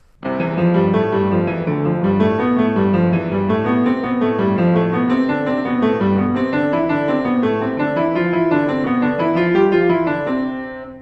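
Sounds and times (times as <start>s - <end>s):
piano playing a repeated exercise pattern in C major: 0.0s - 11.0s.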